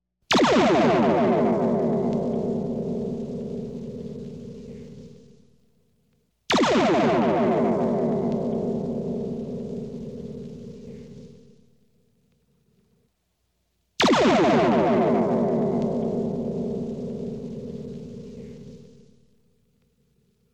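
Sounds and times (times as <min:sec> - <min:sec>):
photon torpedo firing: 0:00.3 - 0:05.2, 0:06.5 - 0:11.3, 0:14.0 - 0:18.9.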